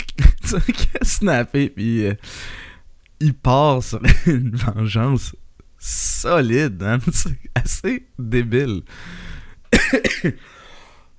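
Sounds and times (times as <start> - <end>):
speech: 0.5 - 2.6, 3.2 - 10.6
person with asthma coughing harshly: 4.0 - 4.4, 9.7 - 10.6.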